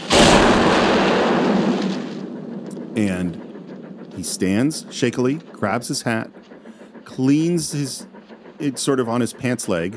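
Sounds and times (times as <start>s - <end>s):
mortar shell explosion with deep broadband boom: 0.0s - 5.5s
speech: 3.0s - 3.5s, 4.2s - 6.5s, 7.1s - 9.9s.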